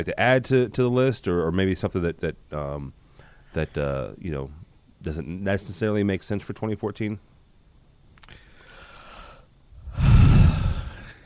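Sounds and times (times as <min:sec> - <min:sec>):
speech: 0:00.0 - 0:07.3
person yawning with a breathy open-mouthed exhale: 0:09.8 - 0:11.2.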